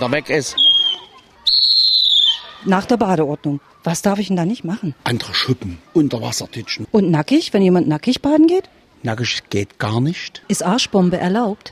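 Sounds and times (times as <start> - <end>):
speech: 0.0 - 0.7, 2.6 - 11.7
lifeguard blowing a pea whistle: 0.6 - 2.5.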